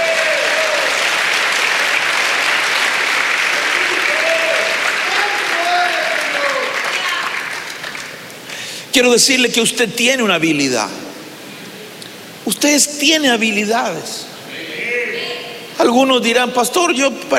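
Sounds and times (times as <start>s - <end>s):
audience clapping hands: 0.0s - 8.5s
speech: 9.0s - 11.0s, 12.5s - 14.3s, 15.8s - 17.3s.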